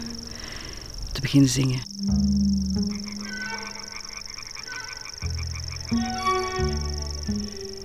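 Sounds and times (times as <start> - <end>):
deeper croaking calls: 0.0 - 7.8
speech: 1.2 - 2.4
grasshopper warbler reeling with a high insect-like trill: 1.8 - 7.8.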